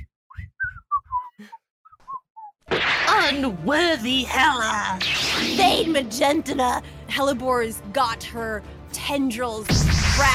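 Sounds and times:
person whistling a tune: 0.0 - 2.6
speech: 3.3 - 10.3.

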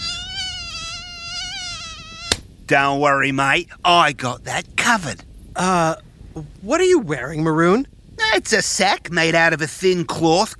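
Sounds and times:
mosquito buzzing in a camping setting: 0.0 - 2.4
speech: 2.7 - 10.5.

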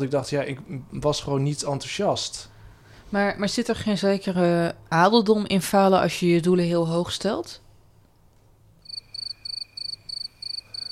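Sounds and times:
speech: 0.0 - 2.5, 3.1 - 7.6
crickets chirping in pulsed trills: 8.8 - 10.9.

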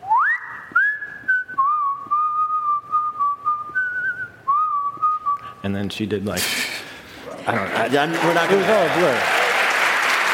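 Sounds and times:
person whistling a slow steady tune: 0.0 - 5.5
speech: 5.6 - 6.8, 7.4 - 9.4.

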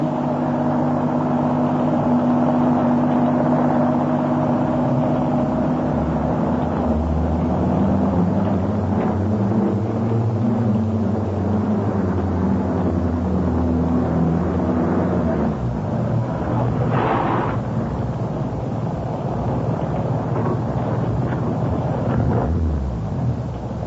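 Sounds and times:
car engine humming while driving and slowing at a farm: 0.0 - 23.8.

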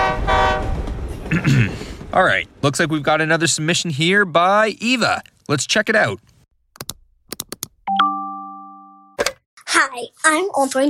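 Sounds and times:
train horn blaring: 0.0 - 0.8
railcars rolling on railroad: 0.0 - 4.2
speech: 1.3 - 6.9, 9.8 - 10.8.

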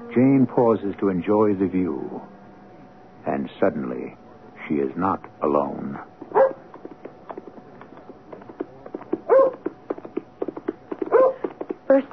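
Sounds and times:
speech: 0.2 - 2.4, 3.2 - 6.4
dog barking sharply on a lonely moor road: 6.3 - 6.6, 9.3 - 9.7, 11.1 - 11.5.

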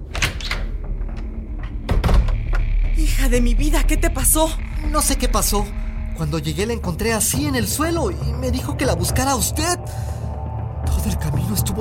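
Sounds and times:
door being opened with sharp clunks: 0.0 - 2.7
door latch rattling: 0.0 - 2.7
low rumble: 0.6 - 11.8
speech: 3.1 - 10.2, 11.0 - 11.8.

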